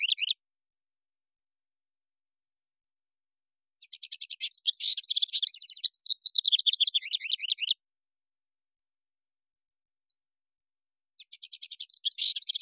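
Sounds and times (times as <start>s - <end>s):
house wren singing: 0.0s - 0.4s, 3.8s - 7.8s, 11.2s - 12.6s.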